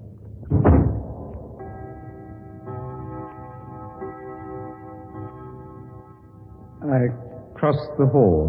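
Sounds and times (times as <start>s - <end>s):
study door shutting with a solid thud: 0.4s - 1.2s
speech: 6.9s - 8.4s.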